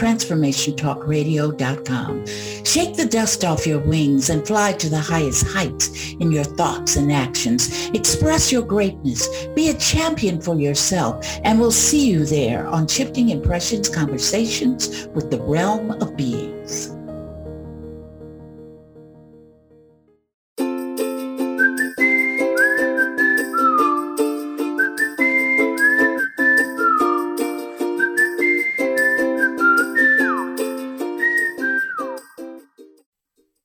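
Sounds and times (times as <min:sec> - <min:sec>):
speech: 0:00.0 - 0:17.0
bright bouncy instrumental tune: 0:02.2 - 0:18.2, 0:20.6 - 0:32.8
cheerful whistled melody: 0:21.4 - 0:32.9.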